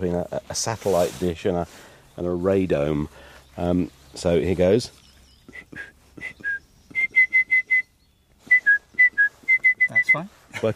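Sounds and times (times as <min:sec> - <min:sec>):
speech: 0:00.0 - 0:06.4, 0:10.1 - 0:10.7
person whistling a lively tune into a microphone: 0:05.5 - 0:10.3
laughter: 0:10.5 - 0:10.7.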